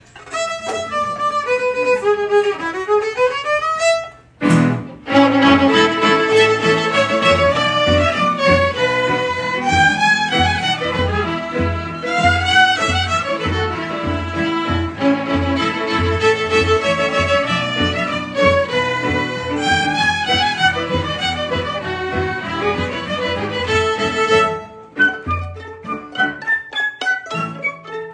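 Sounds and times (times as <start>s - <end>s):
orchestra playing polka: 0.3s - 28.1s.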